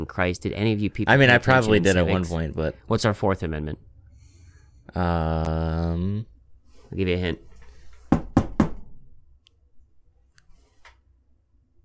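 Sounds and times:
speech: 0.0 - 3.9, 4.9 - 6.3, 6.9 - 7.5
knocking on a door: 8.1 - 8.9.

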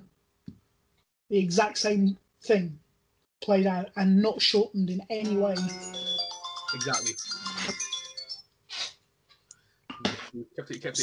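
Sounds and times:
speech: 1.3 - 2.8, 3.4 - 6.0, 6.7 - 7.9, 10.3 - 11.0
phone alarm ringing: 5.2 - 8.4.

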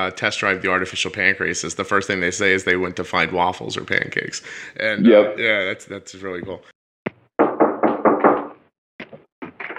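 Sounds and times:
speech: 0.0 - 6.7
firm knocks on a door by someone delivering a package: 7.4 - 8.6.

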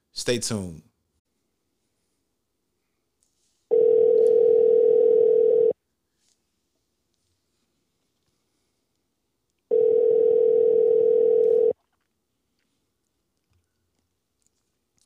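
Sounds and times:
speech: 0.2 - 0.9
telephone ringback tone: 3.7 - 5.8, 9.7 - 11.8.

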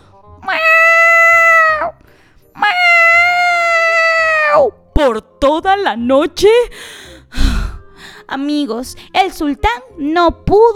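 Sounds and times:
long drawn-out cat meows, sustained wailing yowls: 0.4 - 2.0, 2.6 - 4.8
speech: 5.8 - 7.0, 8.3 - 10.7.

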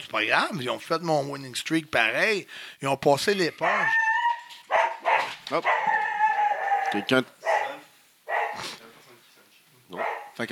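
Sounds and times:
speech: 0.0 - 4.1, 5.5 - 6.0, 6.9 - 7.4, 9.9 - 10.4
dog barking: 3.6 - 8.7, 9.9 - 10.4.

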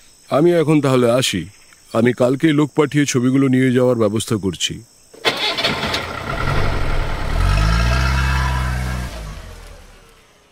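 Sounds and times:
speech: 0.3 - 4.9
car engine starting and driving off: 5.2 - 10.5.

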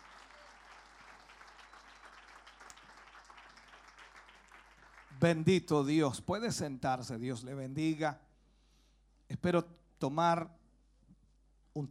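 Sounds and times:
church audience applauding in praise: 0.0 - 5.5
speech: 5.2 - 8.3, 9.4 - 10.6.

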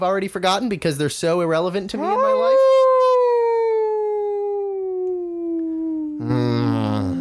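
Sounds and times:
speech: 0.0 - 2.7
wolf howling: 2.0 - 6.2.

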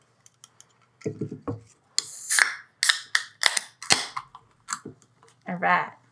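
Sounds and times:
speech: 1.0 - 1.8, 5.5 - 6.0
containers of beer brewed in Reno and Sparks Nevada popped open: 2.0 - 5.1.

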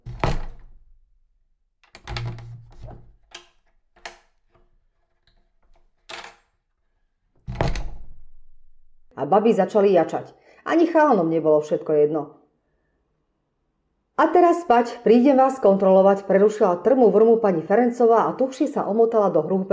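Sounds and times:
door slamming hard with heavy wooden thuds: 0.0 - 0.9, 1.8 - 4.2, 7.4 - 9.1
speech: 9.2 - 12.4, 14.2 - 19.7.

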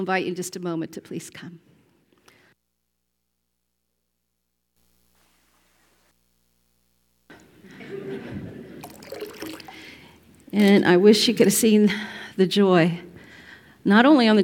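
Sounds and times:
speech: 0.0 - 1.7, 10.5 - 13.1, 13.8 - 14.4
laughter: 7.5 - 9.0
hands splashing and sloshing water in a baptismal font: 8.8 - 11.6.

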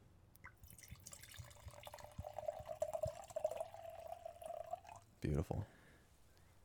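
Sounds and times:
wine pouring into a glass: 0.5 - 5.2
speech: 5.2 - 5.8.

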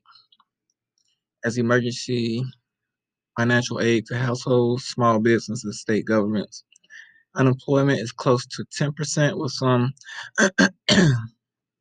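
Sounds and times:
speech: 1.4 - 2.6, 3.4 - 6.7, 7.4 - 11.3
person clearing throat: 10.1 - 11.3.

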